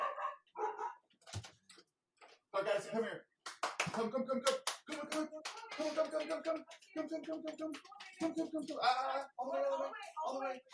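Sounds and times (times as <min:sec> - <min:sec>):
dogs barking: 0:00.0 - 0:01.1
speech: 0:02.5 - 0:03.3, 0:04.0 - 0:10.7.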